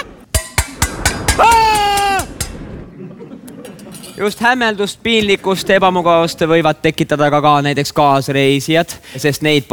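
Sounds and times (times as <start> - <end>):
metal clanks: 0.3 - 2.9, 3.5 - 4.5
metallic clattering and banging: 0.3 - 2.9
laughter: 2.9 - 4.1
speech: 4.2 - 9.7.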